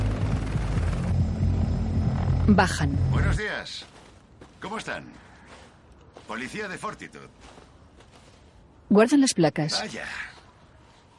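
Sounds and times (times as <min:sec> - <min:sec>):
helicopter descending and landing: 0:00.0 - 0:03.5
speech: 0:02.5 - 0:04.0, 0:04.6 - 0:05.3, 0:06.3 - 0:07.6, 0:08.9 - 0:10.3.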